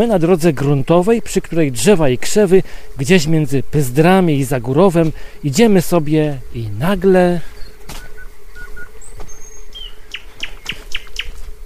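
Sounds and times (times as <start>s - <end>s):
speech: 0.0s - 8.0s
thrush nightingale singing at midnight beside a dirt road amid meadows and marshes: 7.5s - 11.4s.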